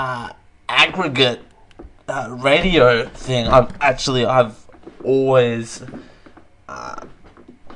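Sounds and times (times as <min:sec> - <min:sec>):
speech: 0:00.0 - 0:01.5, 0:02.1 - 0:06.1
chair squeaking and creaking: 0:01.7 - 0:07.7.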